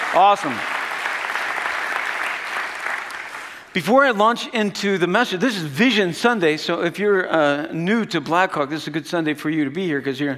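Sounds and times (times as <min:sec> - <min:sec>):
audience applause at a church service: 0:00.0 - 0:03.7
speech: 0:00.2 - 0:00.7, 0:03.7 - 0:10.3.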